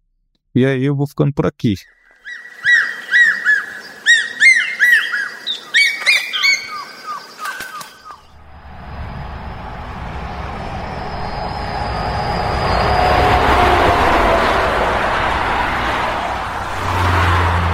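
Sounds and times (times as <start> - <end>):
speech: 0.6 - 2.0
ornate hawk-eagle giving shrill whistled call notes: 1.8 - 8.2
steady rushing noise: 2.2 - 17.7.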